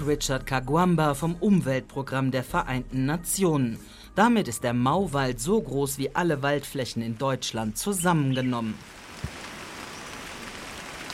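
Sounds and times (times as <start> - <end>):
speech: 0.0 - 9.4
rain falling in thick drops on ancient giant trees in a Kenyan mountain forest: 6.4 - 11.1.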